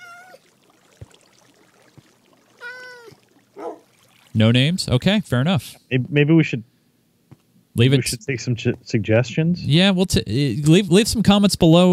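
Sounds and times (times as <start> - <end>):
cat meowing: 0.0 - 0.4, 2.6 - 3.2
speech: 4.4 - 6.7, 7.8 - 11.9.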